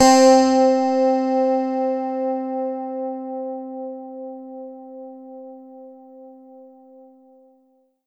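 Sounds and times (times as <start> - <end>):
Yamaha EX5 Strat 4 Way C4 note: 0.0 - 1.8.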